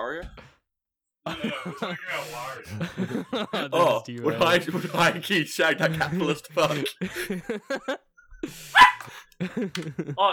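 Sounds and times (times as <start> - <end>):
speech: 1.2 - 8.8, 9.4 - 10.3
laughter: 1.3 - 10.3
dog barking: 8.7 - 9.2.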